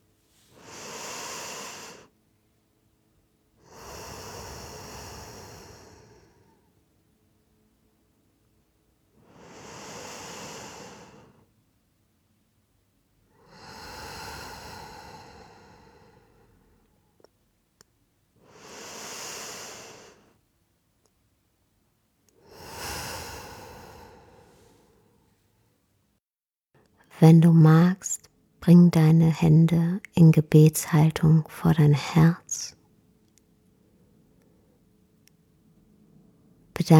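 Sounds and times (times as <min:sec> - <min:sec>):
deep slow breathing during a guided relaxation: 0:03.6 - 0:06.8, 0:09.2 - 0:11.5, 0:13.3 - 0:17.0, 0:22.4 - 0:25.4
speech: 0:27.2 - 0:32.8, 0:36.8 - 0:36.9.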